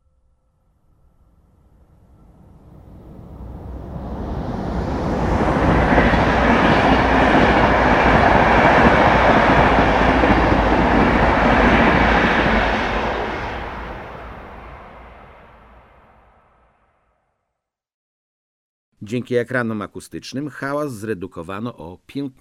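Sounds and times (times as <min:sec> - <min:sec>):
passenger train passing without noise barriers: 0:01.4 - 0:16.4
speech: 0:19.1 - 0:22.4.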